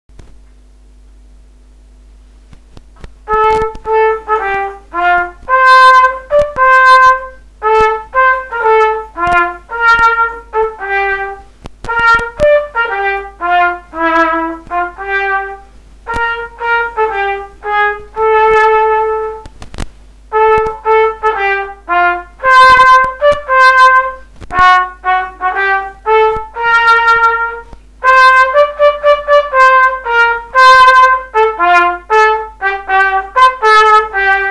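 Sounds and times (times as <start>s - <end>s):
trumpet playing an anthem: 3.3s - 19.5s, 20.3s - 34.4s.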